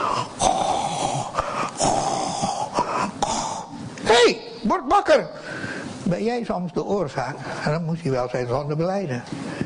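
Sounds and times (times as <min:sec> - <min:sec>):
person imitating snoring with their voice: 0:00.1 - 0:03.7
speech: 0:05.0 - 0:05.4, 0:06.1 - 0:09.5.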